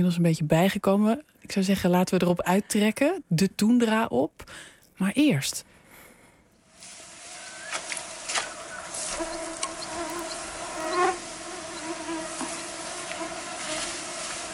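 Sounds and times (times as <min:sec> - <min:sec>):
speech: 0:00.0 - 0:05.7
mosquitoes buzzing on the tundra: 0:07.4 - 0:14.5.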